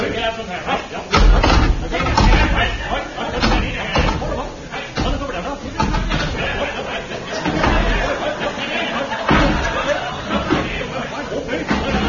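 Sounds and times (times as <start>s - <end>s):
laughter: 0.0s - 12.0s
people talking: 0.0s - 12.0s
wooden chairs being stacked one on top of another: 1.1s - 12.0s.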